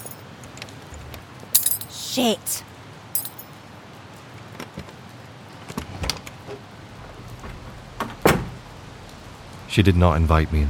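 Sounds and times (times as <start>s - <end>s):
keys dropped on the ground clattering: 0.0s - 0.2s, 1.6s - 2.1s, 3.2s - 3.5s
keys jingling: 0.0s - 0.2s, 1.6s - 2.0s, 3.2s - 3.4s
speech: 2.1s - 2.7s, 9.8s - 10.6s.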